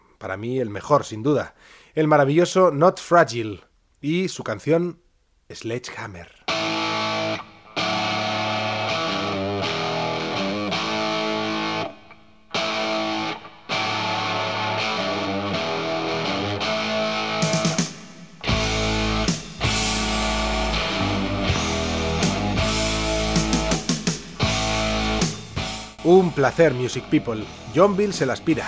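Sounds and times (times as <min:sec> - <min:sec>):
speech: 0:00.2 - 0:06.4, 0:26.1 - 0:28.6
hard rock track with distorted electric guitar, drums and bass: 0:06.5 - 0:28.6.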